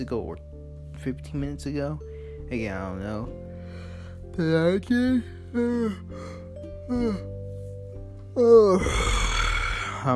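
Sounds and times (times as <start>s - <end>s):
speech: 0.0s - 7.3s, 8.4s - 9.2s
person yawning: 6.9s - 7.3s, 8.4s - 10.1s.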